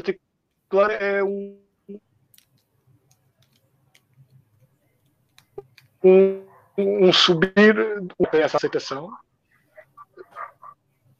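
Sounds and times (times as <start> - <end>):
speech: 0.0 - 2.1, 6.0 - 9.2
dogs barking outside in the street: 6.4 - 6.9, 8.2 - 11.0.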